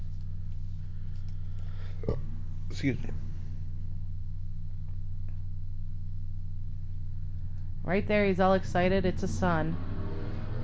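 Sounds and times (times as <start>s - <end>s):
stock car engine rumbling outside: 0.0s - 10.6s
speech: 2.8s - 3.3s, 7.9s - 9.9s.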